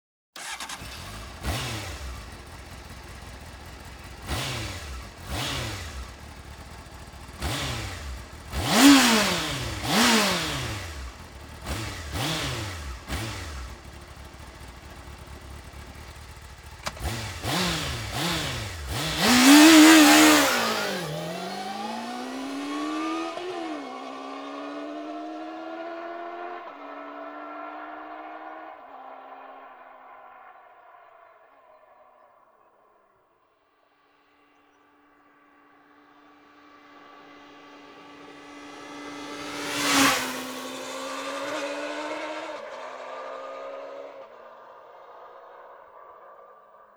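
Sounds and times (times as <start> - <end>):
Honda CB 600 Hornet motorcycle engine: 0.4 - 29.2, 36.5 - 44.3.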